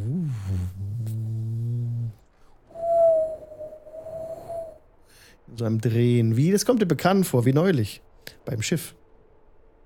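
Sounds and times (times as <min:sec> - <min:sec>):
voice imitating howling, intensifying wind: 0:00.0 - 0:04.8
speech: 0:05.6 - 0:09.0.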